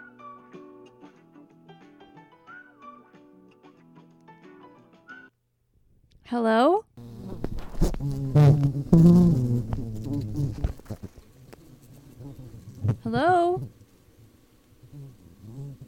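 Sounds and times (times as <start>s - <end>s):
speech: 6.3s - 7.1s, 8.0s - 9.9s
person voicing a wavering bee-like buzz: 7.0s - 10.6s.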